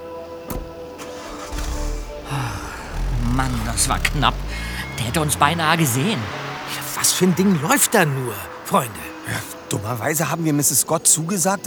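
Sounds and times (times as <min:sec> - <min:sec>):
car engine cranking and settling into a low rumble: 0:00.0 - 0:11.4
car door closing: 0:00.4 - 0:07.0
speech: 0:03.4 - 0:06.4, 0:07.0 - 0:11.6.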